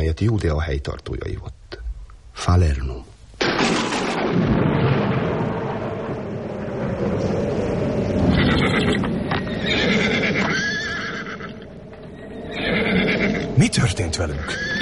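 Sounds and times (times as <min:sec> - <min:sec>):
speech: 0:00.1 - 0:01.6, 0:02.4 - 0:04.6, 0:13.6 - 0:14.8
deep rolling thunder rumbling: 0:03.4 - 0:14.8
horses whinnying and neighing: 0:08.3 - 0:11.7, 0:12.3 - 0:13.6, 0:14.3 - 0:14.8.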